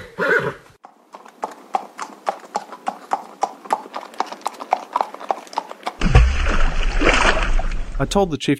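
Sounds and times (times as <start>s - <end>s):
horse whinnying: 0.0s - 0.8s
horse hooves clip-clopping as it is ridden: 0.8s - 6.0s
horse cannonballing and splashing into very cold water: 6.0s - 8.1s
speech: 8.0s - 8.5s.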